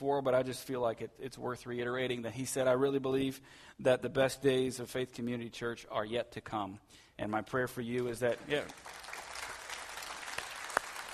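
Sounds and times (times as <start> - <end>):
speech: 0.0 - 9.1
crowd applauding: 8.3 - 11.1.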